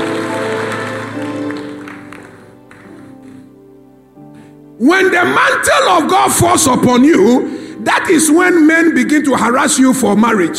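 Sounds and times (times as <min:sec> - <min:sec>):
church audience clapping at a preacher's call: 0:00.0 - 0:03.6
steady sustained organ-like music: 0:00.0 - 0:10.5
speech: 0:04.8 - 0:10.5.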